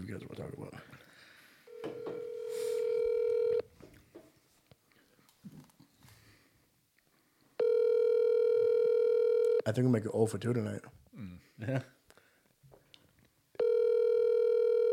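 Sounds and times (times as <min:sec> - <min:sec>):
speech: 0:00.1 - 0:01.0, 0:09.7 - 0:11.0, 0:11.6 - 0:12.0
telephone ringing tone as a call is dialled: 0:01.7 - 0:03.7, 0:07.6 - 0:09.6, 0:13.6 - 0:14.9.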